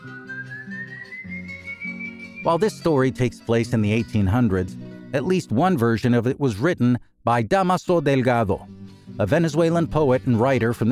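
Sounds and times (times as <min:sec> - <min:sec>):
lone human whistling one long note: 0:00.0 - 0:02.8
speech: 0:02.4 - 0:10.9.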